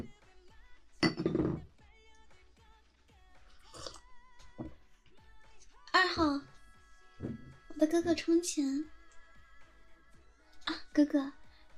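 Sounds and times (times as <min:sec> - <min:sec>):
glasses clinking in a toast: 0:01.0 - 0:01.6
speech: 0:07.9 - 0:09.0, 0:11.0 - 0:11.4.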